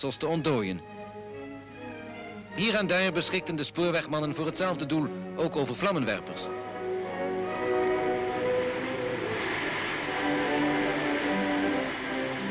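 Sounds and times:
speech: 0.0s - 1.0s, 2.6s - 6.6s
train rumbling along frozen railway rails: 2.6s - 12.4s.

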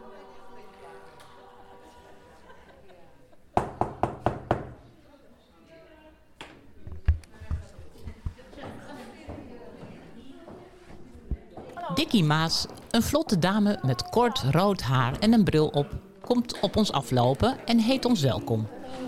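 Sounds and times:
laughter: 1.7s - 3.6s
quick knocks on a door: 3.6s - 4.8s
speech: 12.0s - 19.0s.

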